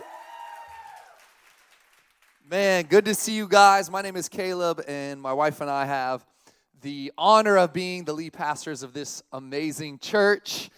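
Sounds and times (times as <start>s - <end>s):
church audience applauding and cheering: 0.0s - 2.6s
speech: 2.5s - 10.7s.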